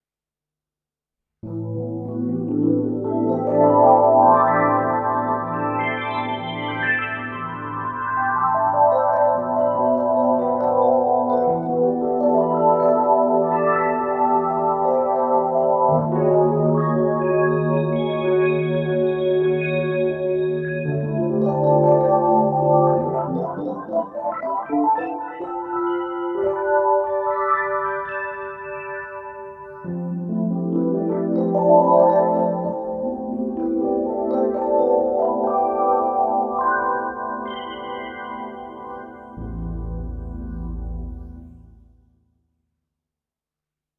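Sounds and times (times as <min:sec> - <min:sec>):
Rhodes electric piano: 0:01.4 - 0:42.0.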